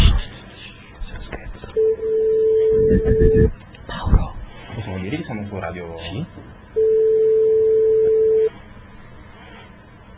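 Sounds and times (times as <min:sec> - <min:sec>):
telephone tone while a number is being called: 0:01.8 - 0:03.5, 0:06.8 - 0:08.5
speech: 0:05.0 - 0:06.5.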